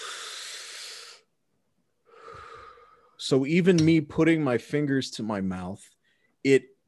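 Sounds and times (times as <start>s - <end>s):
deep breathy exhale mimicking blowing out smoke: 0.0s - 1.3s, 2.0s - 3.2s
speech: 3.2s - 6.7s.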